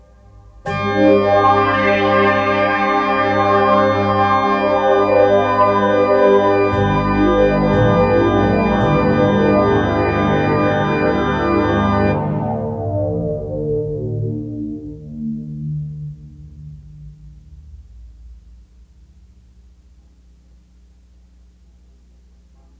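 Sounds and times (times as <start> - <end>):
synthesizer parts: 0.0 - 17.2.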